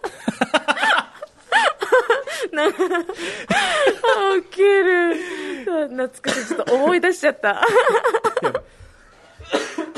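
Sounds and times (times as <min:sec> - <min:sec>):
laughter: 0:00.0 - 0:04.5, 0:07.6 - 0:09.9
speech: 0:02.6 - 0:08.6
spluttering coughs after choking: 0:06.2 - 0:07.0, 0:09.4 - 0:09.9.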